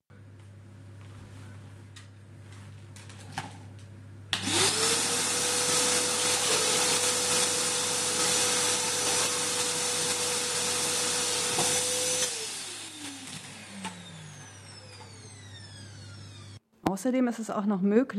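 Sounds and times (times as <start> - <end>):
pneumatic tube mail system blower whining and roaring: 4.4 - 16.6
speech: 17.0 - 18.1.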